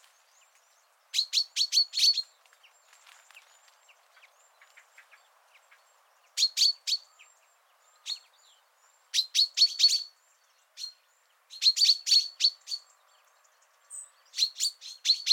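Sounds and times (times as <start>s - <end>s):
common chaffinch Fringilla coelebs giving short sharp high chirps: 0.0s - 15.3s.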